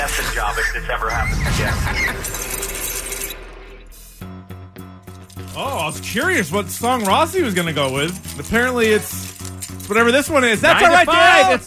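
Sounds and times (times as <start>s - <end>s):
speech: 0.0s - 2.5s, 5.6s - 9.2s, 9.9s - 11.6s
bunch of keys jingling: 2.1s - 4.2s, 5.0s - 11.5s.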